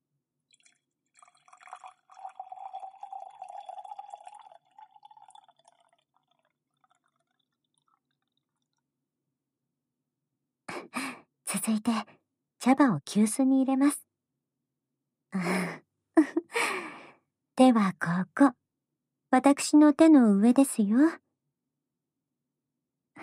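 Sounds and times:
hot water poured slowly for making tea: 0:00.5 - 0:08.6
speech: 0:10.8 - 0:14.0, 0:15.3 - 0:15.7, 0:17.6 - 0:18.6, 0:19.3 - 0:21.2.

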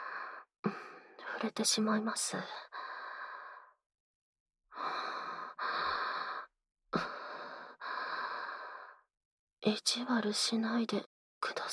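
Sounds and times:
speech: 0:00.7 - 0:02.8, 0:09.7 - 0:11.1
warm breathy exhales close to the microphone: 0:02.6 - 0:03.8, 0:04.7 - 0:09.1.

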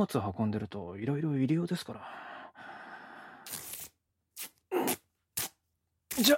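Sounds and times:
speech: 0:00.0 - 0:02.7, 0:06.2 - 0:06.3
packing tape screeching off its roll: 0:03.5 - 0:06.3.

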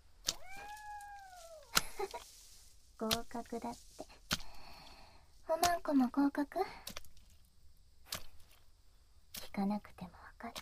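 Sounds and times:
person imitating a cat's meow: 0:00.3 - 0:01.8
speech: 0:03.0 - 0:04.1, 0:05.5 - 0:07.0, 0:09.6 - 0:10.6.

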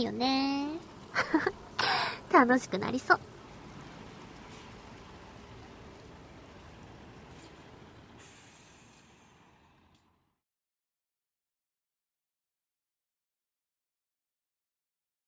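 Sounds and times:
speech: 0:00.0 - 0:03.3
large bus engine roar: 0:00.0 - 0:10.4
bus air-brake hiss: 0:08.2 - 0:10.0.

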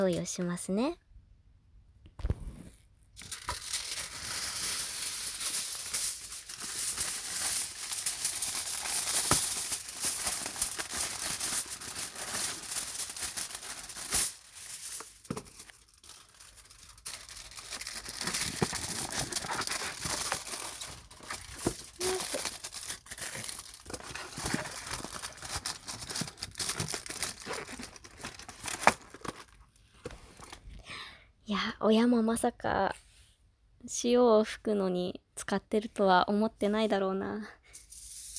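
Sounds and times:
speech: 0:00.0 - 0:01.0, 0:32.3 - 0:33.0, 0:34.0 - 0:37.6
aluminium foil crumpled and crinkled by hand: 0:03.2 - 0:29.6.

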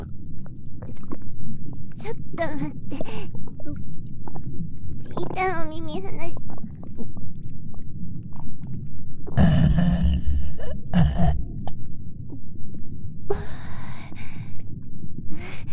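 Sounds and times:
soft internal rumbling: 0:00.0 - 0:15.7
speech: 0:02.0 - 0:03.8, 0:05.4 - 0:07.2
low burp: 0:09.4 - 0:11.5.

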